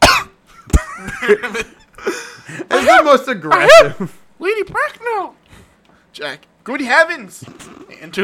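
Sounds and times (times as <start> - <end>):
loud deliberately performed cough during a play reading: 0.0 - 1.3
speech: 1.2 - 2.2, 2.8 - 5.4, 6.2 - 8.2.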